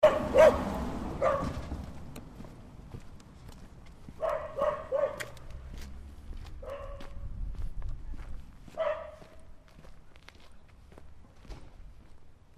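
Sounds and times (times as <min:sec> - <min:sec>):
dog barking in short harsh bursts: 0:00.0 - 0:01.6, 0:04.2 - 0:05.4, 0:06.6 - 0:07.2, 0:08.7 - 0:09.5.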